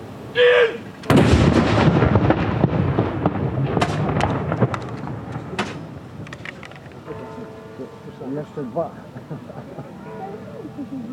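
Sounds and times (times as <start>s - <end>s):
cannon salute shots in Norway fired after the death of a king: 0.7s - 6.3s
sharp cracks: 1.0s - 7.1s
laughter: 8.8s - 11.1s.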